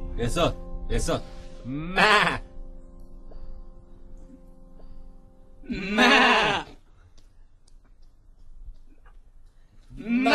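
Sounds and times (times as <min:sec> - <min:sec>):
speech: 0:00.2 - 0:02.4
voice imitating a sheep bleating: 0:01.7 - 0:02.4, 0:05.7 - 0:06.7, 0:10.0 - 0:10.3.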